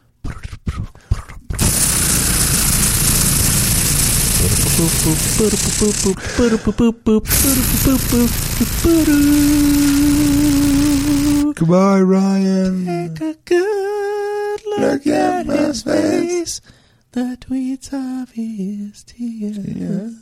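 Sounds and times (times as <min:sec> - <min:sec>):
helicopter whirring roar: 0:01.6 - 0:06.2, 0:07.3 - 0:11.5
low humming tone: 0:01.6 - 0:06.2, 0:07.3 - 0:11.5
speech: 0:04.8 - 0:14.0, 0:14.8 - 0:20.1.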